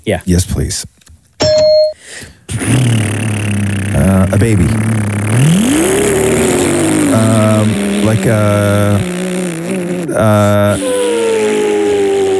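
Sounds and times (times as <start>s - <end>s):
speech: 0.0s - 1.0s, 4.0s - 6.2s, 7.1s - 9.2s, 10.1s - 10.9s
electronic game-timer ding: 1.4s - 2.0s
person making an engine noise with their mouth: 2.5s - 12.3s.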